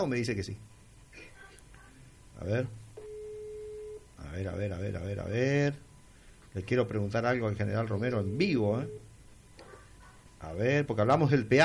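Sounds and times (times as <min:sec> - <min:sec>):
speech: 0:00.0 - 0:00.8, 0:02.4 - 0:02.8, 0:04.2 - 0:05.9, 0:06.5 - 0:09.0, 0:10.4 - 0:11.6
unanswered telephone call ring tone: 0:03.0 - 0:04.0, 0:08.2 - 0:09.1.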